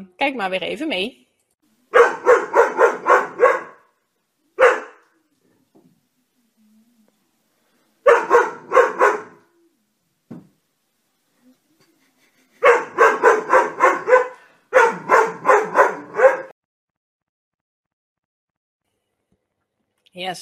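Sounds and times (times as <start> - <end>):
speech: 0.0 - 1.2, 20.2 - 20.3
dog barking: 1.9 - 3.9, 4.6 - 5.0, 8.0 - 9.4, 12.6 - 16.5.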